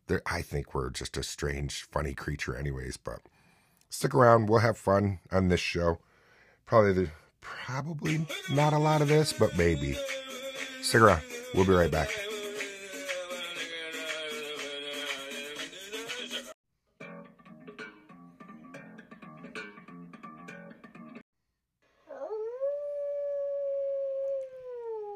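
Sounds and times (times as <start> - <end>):
speech: 0.1 - 3.3, 3.9 - 6.1, 6.7 - 10.2, 10.9 - 12.2
human voice imitating a dog or wolf howl: 22.1 - 25.1.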